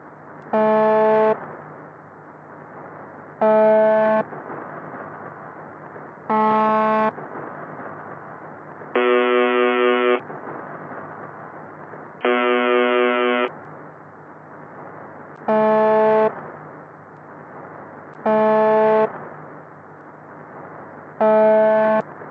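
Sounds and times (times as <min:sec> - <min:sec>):
shortwave radio static and hum: 0:00.0 - 0:22.2
Russian secret shortwave station buzzer tone received in single-sideband mode: 0:00.5 - 0:01.4, 0:03.4 - 0:04.2, 0:06.3 - 0:07.1, 0:09.0 - 0:10.2, 0:12.2 - 0:13.5, 0:15.5 - 0:16.3, 0:18.2 - 0:19.1, 0:21.2 - 0:22.0.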